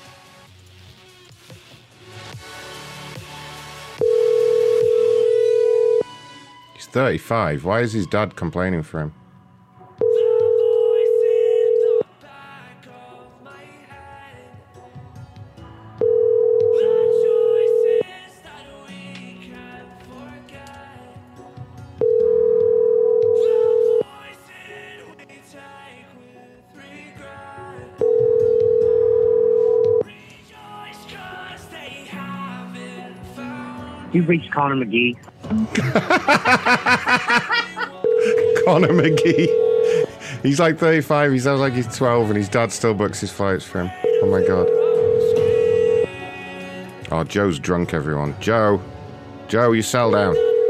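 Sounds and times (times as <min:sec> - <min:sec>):
outgoing telephone call ring tones: 0:04.0 - 0:06.1, 0:10.0 - 0:12.1, 0:16.0 - 0:18.1, 0:22.0 - 0:24.1, 0:28.0 - 0:30.0, 0:38.0 - 0:40.1, 0:44.0 - 0:46.1, 0:50.3 - 0:50.6
speech: 0:06.9 - 0:09.2, 0:34.2 - 0:37.4, 0:38.2 - 0:44.8, 0:47.1 - 0:48.9, 0:49.5 - 0:50.4
laughter: 0:35.5 - 0:40.5.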